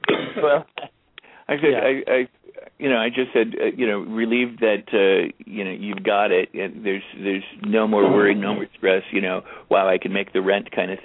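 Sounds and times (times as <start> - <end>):
throat clearing: 0.0 - 0.9, 8.0 - 8.6
voiced sputtering coughs after drinking water: 0.0 - 0.9, 8.0 - 8.6
speech: 0.4 - 0.8, 1.5 - 11.0.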